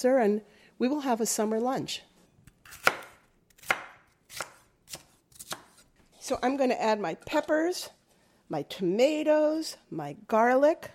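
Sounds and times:
speech: 0.0s - 2.1s, 6.3s - 10.9s
knife chopping vegetables on a cutting board: 2.6s - 5.8s.

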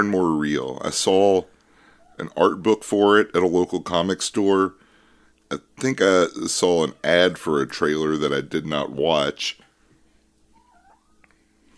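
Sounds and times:
speech: 0.0s - 1.6s, 2.2s - 4.8s, 5.5s - 9.6s
low steady hum: 0.0s - 11.7s
angry cat meowing: 10.6s - 11.2s.

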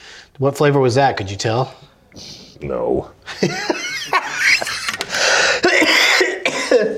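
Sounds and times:
speech: 0.4s - 3.8s
laughter: 3.2s - 5.2s
harsh raspy coughing: 4.2s - 6.9s.

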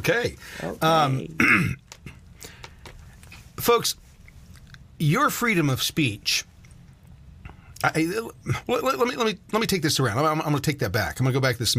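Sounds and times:
speech: 0.0s - 1.8s, 3.6s - 4.0s, 5.0s - 6.5s, 7.8s - 11.7s
person clearing throat harshly: 1.4s - 1.8s
person coughing: 1.4s - 1.8s.

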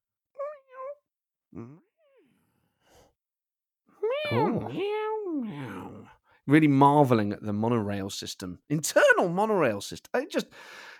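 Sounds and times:
speech: 1.5s - 1.9s, 4.3s - 5.6s, 6.5s - 10.9s
person imitating a cat meow: 4.0s - 6.1s.

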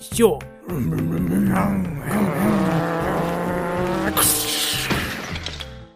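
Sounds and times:
speech: 0.1s - 2.6s
racing car engines roaring and revving: 2.0s - 5.6s
racing car tires squealing: 2.1s - 5.7s.

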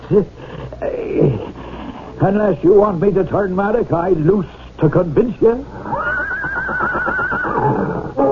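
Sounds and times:
speech: 0.1s - 1.6s, 2.2s - 5.8s
horse whinnying and neighing: 5.8s - 8.2s.

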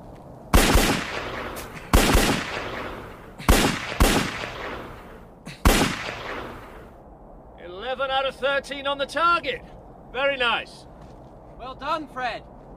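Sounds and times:
pistol gunshots during firing practice: 0.5s - 6.9s
speech: 8.4s - 10.9s, 11.6s - 12.5s.

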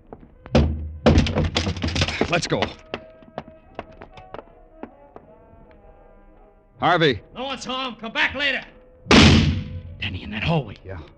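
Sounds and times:
door kicked with heavy thuds against wood: 0.5s - 3.1s
door giving way with loud rattling crash and clatter: 0.6s - 2.3s
speech: 2.3s - 2.9s, 6.8s - 9.2s, 10.0s - 11.1s.

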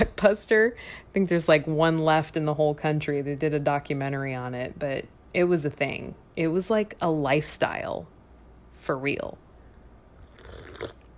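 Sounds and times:
speech: 0.0s - 8.1s, 8.8s - 9.4s, 10.8s - 11.0s
person sipping tea from a cup: 10.2s - 11.1s.

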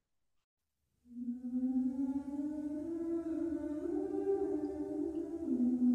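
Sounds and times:
choir singing long sustained notes: 1.2s - 5.9s.

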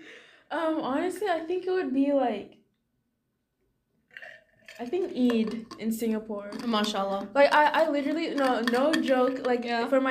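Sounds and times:
speech: 0.5s - 2.6s, 4.8s - 10.0s
person sipping and swallowing water: 4.1s - 4.8s.

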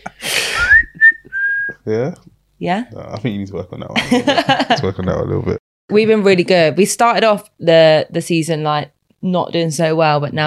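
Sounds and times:
person whistling a brief three-note tune: 0.6s - 1.8s
speech: 1.9s - 10.4s
laughter: 3.9s - 5.6s.

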